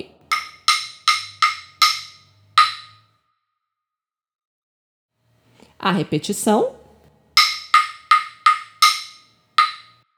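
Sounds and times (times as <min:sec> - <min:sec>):
rhythm: 0:00.3 - 0:02.9, 0:07.4 - 0:09.9.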